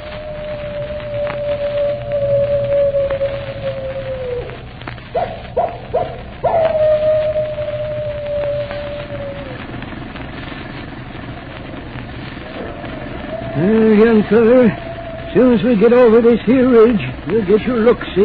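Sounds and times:
animal howling: 0.0 - 9.9, 12.3 - 18.2
constant rushing hiss: 0.0 - 18.2
speech: 14.3 - 14.8, 15.4 - 18.2.

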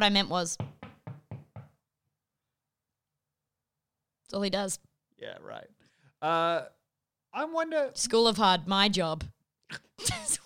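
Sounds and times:
speech: 0.0 - 0.7, 4.3 - 10.4
firm knocks on a wooden door: 0.6 - 1.8.

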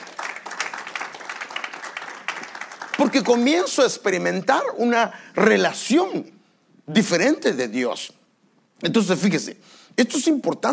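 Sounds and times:
crowd applauding: 0.0 - 3.8
speech: 3.0 - 8.2, 8.8 - 10.7.

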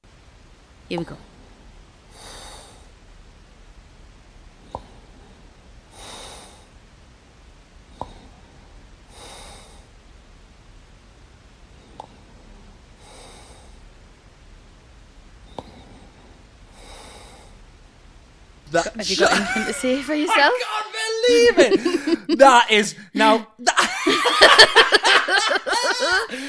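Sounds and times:
speech: 0.9 - 1.3, 18.8 - 26.4
loud snorting inhales of a sleeper at night: 2.1 - 2.9, 5.9 - 6.7, 9.1 - 9.9, 13.0 - 13.8, 15.7 - 17.6, 26.3 - 26.4
laughter: 18.9 - 22.6, 23.6 - 26.4.

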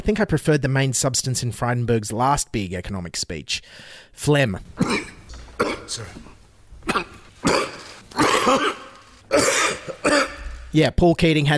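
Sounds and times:
speech: 0.0 - 5.1, 5.9 - 11.5
harsh chesty coughing fit: 4.8 - 10.7.

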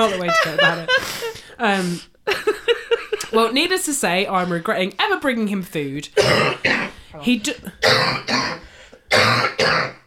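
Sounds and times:
speech: 0.0 - 2.4, 3.3 - 10.0
laughter: 0.0 - 3.5
harsh hacking smoker's cough: 6.2 - 7.0, 7.8 - 10.0.

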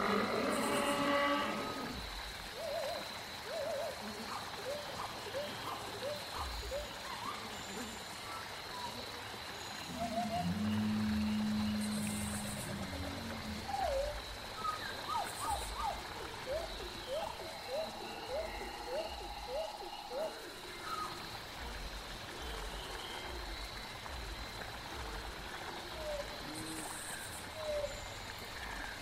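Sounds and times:
high insect whine in a prehistoric forest: 0.0 - 29.0
low drawn-out dinosaur groan: 9.9 - 14.2.

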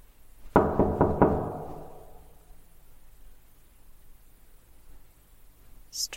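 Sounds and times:
firm knocking on a wooden door: 0.5 - 2.4.

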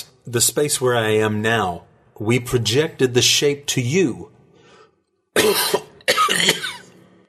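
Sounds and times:
speech: 0.2 - 4.4, 5.4 - 5.8
painful cough: 5.4 - 7.0.

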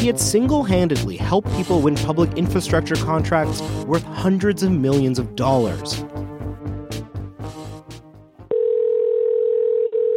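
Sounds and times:
speech: 0.0 - 6.2
telephone dial tone while calling a cell phone: 8.5 - 10.1.

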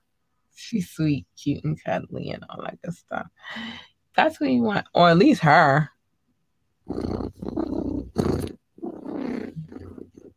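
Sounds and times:
speech: 0.6 - 5.9, 6.9 - 7.4
human voice imitating a cat purring: 6.9 - 10.3.

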